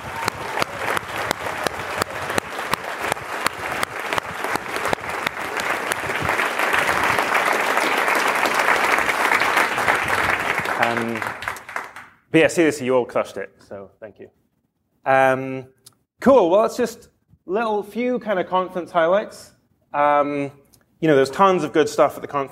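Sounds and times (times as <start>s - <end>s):
large conference audience applause: 0.0s - 12.2s
speech: 12.4s - 14.4s, 15.0s - 22.5s.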